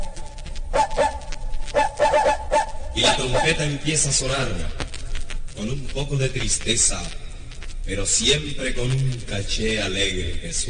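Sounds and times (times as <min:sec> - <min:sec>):
house dog barking sadly: 0:00.8 - 0:01.2, 0:01.8 - 0:03.5
speech: 0:03.1 - 0:04.8, 0:05.6 - 0:07.2, 0:07.9 - 0:10.6.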